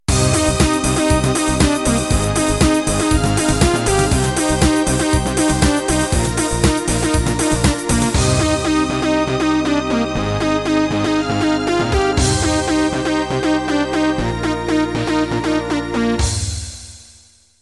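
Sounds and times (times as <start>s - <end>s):
techno music ending: 0.1s - 17.1s.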